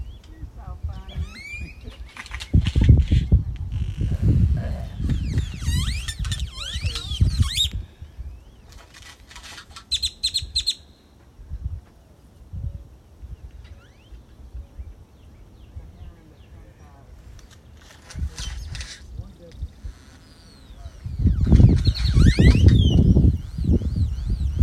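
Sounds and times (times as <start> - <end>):
grackle calls: 1.0 - 2.8, 3.7 - 7.8, 9.5 - 11.0, 17.5 - 24.6.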